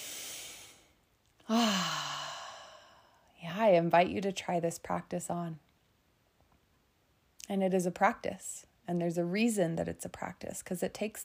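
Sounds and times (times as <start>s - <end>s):
deep breath taken in: 0.0s - 3.3s
loud voiced sigh of release: 1.5s - 2.8s
speech: 3.7s - 5.7s, 7.5s - 11.2s.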